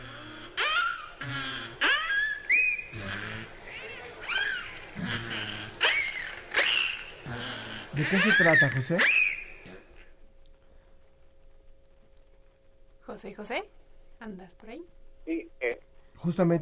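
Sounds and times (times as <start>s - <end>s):
beluga whales calling: 0.0s - 9.9s
speech: 8.0s - 9.2s, 13.2s - 16.6s.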